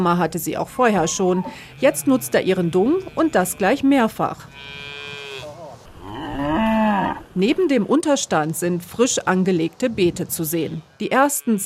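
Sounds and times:
speech: 0.0s - 5.0s, 7.4s - 11.6s
single cow mooing: 0.8s - 7.3s.

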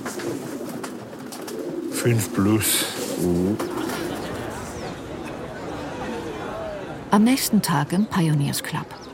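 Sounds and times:
pigeons cooing: 0.0s - 6.6s
busy noisy chatter and babble: 1.9s - 9.1s
speech: 2.0s - 3.9s, 7.1s - 9.0s.

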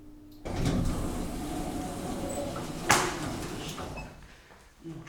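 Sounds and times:
lift halting with a low rumble and clunk: 0.4s - 4.2s
elevator sliding door rolling open: 0.4s - 4.3s.

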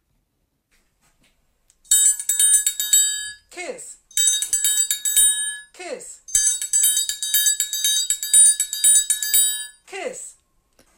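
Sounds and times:
song melody played on a triangle: 1.9s - 3.5s, 4.1s - 9.8s.

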